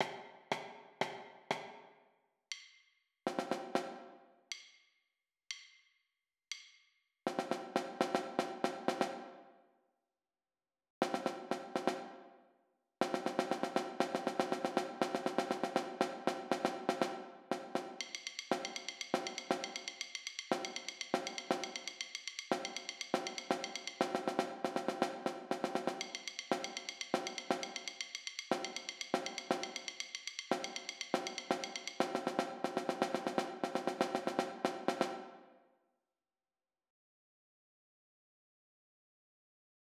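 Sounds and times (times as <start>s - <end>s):
snare drum jams: 3.3s - 4.1s, 7.3s - 9.3s, 11.0s - 12.1s, 13.0s - 35.4s.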